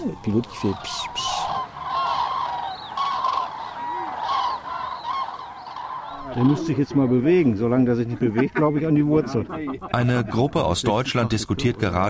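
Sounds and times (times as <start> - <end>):
speech: 0.0 - 1.4, 6.4 - 12.0
flock of cranes trumpeting: 0.0 - 8.6
steady noise: 0.0 - 12.0
laughter: 6.3 - 12.0.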